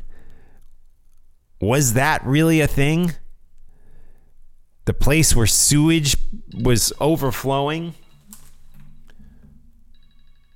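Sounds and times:
speech: 0:01.6 - 0:03.2, 0:04.8 - 0:08.0
mobile phone ringtone: 0:08.9 - 0:10.5.

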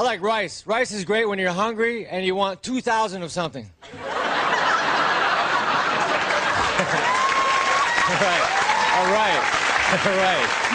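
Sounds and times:
speech: 0:00.0 - 0:04.2, 0:08.1 - 0:10.7
comedy audience laughter: 0:03.8 - 0:08.5, 0:09.8 - 0:10.7
comedy audience clapping: 0:05.4 - 0:10.7.

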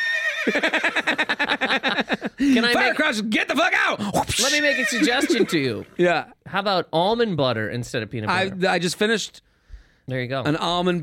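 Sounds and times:
horse whinnying: 0:00.0 - 0:00.7, 0:04.2 - 0:06.0
laughter: 0:00.4 - 0:03.0, 0:04.4 - 0:05.9
speech: 0:00.4 - 0:09.5, 0:10.1 - 0:11.0.

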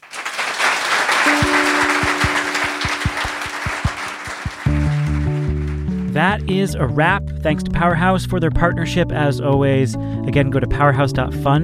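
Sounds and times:
crowd applauding: 0:00.0 - 0:06.2
speech: 0:06.2 - 0:11.6.

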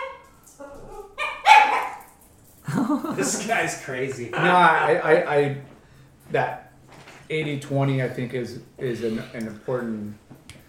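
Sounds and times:
dog barking high-pitched: 0:00.0 - 0:02.2
laughter: 0:02.7 - 0:05.3
speech: 0:02.9 - 0:05.7, 0:06.3 - 0:06.6, 0:07.3 - 0:10.3.

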